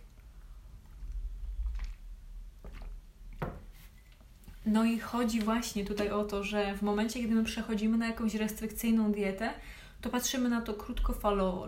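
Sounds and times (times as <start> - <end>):
person sipping a drink: 0.0 - 3.1
speech: 4.6 - 11.6.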